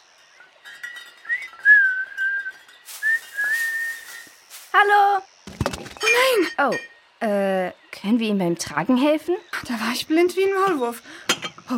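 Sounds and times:
person whistling a tune: 1.3 - 4.4
faint hiss: 2.9 - 5.3
speech: 4.8 - 5.3, 6.0 - 11.7.

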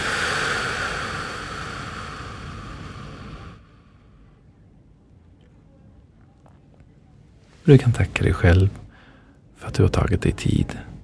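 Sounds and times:
long deep exhale: 0.0 - 4.4, 8.8 - 9.4
speech: 7.7 - 8.8, 9.7 - 10.9.

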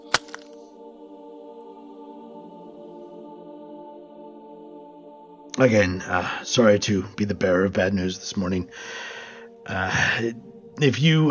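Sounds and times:
glass cracking inside a gripping hand: 0.0 - 0.6
speech: 5.6 - 9.1, 9.7 - 11.2.

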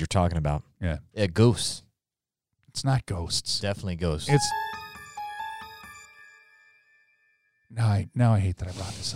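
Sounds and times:
speech: 0.0 - 1.8, 2.8 - 4.8, 7.7 - 9.1
telephone ringing with bright bell-like electronic tones: 4.3 - 7.2.

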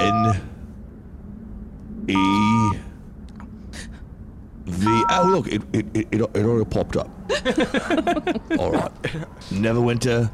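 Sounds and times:
loud buzzy electronic phone keypad tones: 0.0 - 0.4, 4.8 - 5.4
speech: 2.1 - 2.8, 5.1 - 10.3
laughter: 7.3 - 9.6.

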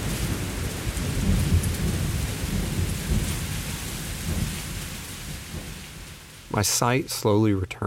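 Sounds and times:
deep rolling thunder: 0.0 - 6.2
heavy rain in a thunderstorm: 0.0 - 7.8
speech: 6.6 - 7.8.

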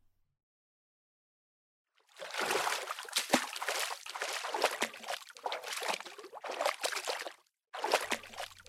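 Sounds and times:
legs wading through shallow sea water: 2.1 - 8.6.

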